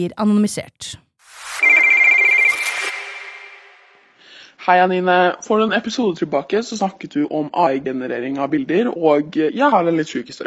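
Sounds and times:
speech: 0.0 - 1.0, 4.7 - 10.4
telephone ringtone with rapid warbling tone: 1.5 - 4.0.

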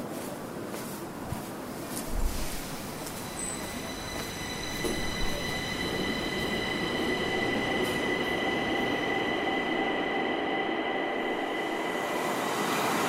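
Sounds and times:
subway train rumbling, heard from inside the car: 0.0 - 13.0
subway train wheel squeals: 3.2 - 8.2.

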